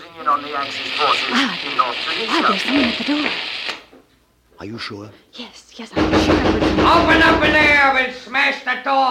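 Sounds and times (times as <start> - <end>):
crackling hissing static of an illegal radio broadcast: 0.0 - 3.9
speech: 0.2 - 3.6, 4.6 - 9.1.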